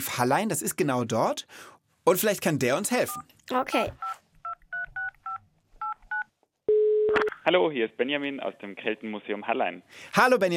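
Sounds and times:
speech: 0.1 - 4.1, 7.5 - 10.5
touch-tone beeps of a phone number being dialed: 4.0 - 7.3.

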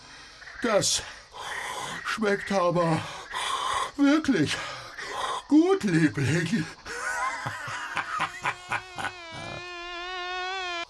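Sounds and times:
speech: 0.6 - 1.2, 2.2 - 3.2, 4.0 - 4.7, 5.5 - 6.8
laughter: 6.9 - 9.6
short snickering bursts: 6.9 - 9.7
high-pitched mosquito whine: 8.3 - 10.8.

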